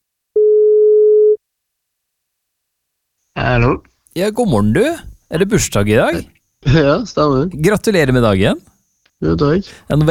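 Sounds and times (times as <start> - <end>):
telephone ringing tone while a radio host calls a listener: 0.4 - 1.4
speech: 3.4 - 10.0.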